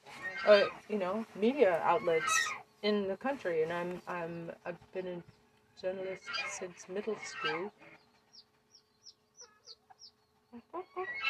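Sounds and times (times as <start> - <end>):
pet hen clucking: 0.0 - 11.2
speech: 0.4 - 7.9.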